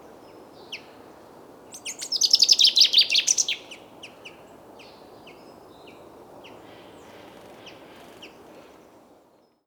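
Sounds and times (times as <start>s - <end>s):
common chaffinch Fringilla coelebs singing: 1.7s - 3.8s.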